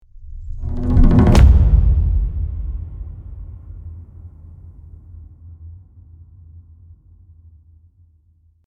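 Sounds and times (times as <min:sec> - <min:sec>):
cinematic tribal drum impact hit: 0:00.4 - 0:05.4.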